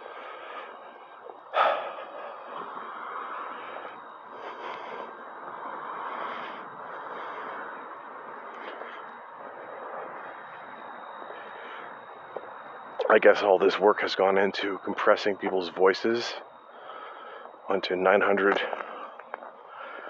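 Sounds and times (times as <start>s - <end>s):
heavy raspy breathing: 0.0s - 13.0s, 16.3s - 17.7s, 18.6s - 20.0s
speech: 13.1s - 16.5s, 17.7s - 18.8s.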